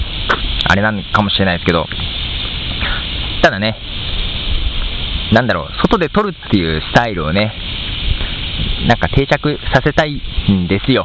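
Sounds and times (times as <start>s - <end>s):
cicadas singing in a park: 0.0s - 11.0s
speech: 0.7s - 2.1s, 3.4s - 3.9s, 5.3s - 7.6s, 8.6s - 11.0s.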